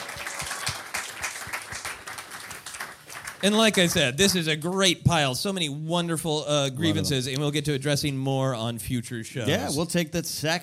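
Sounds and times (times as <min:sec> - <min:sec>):
crowd applauding: 0:00.0 - 0:04.4
speech: 0:03.4 - 0:10.6.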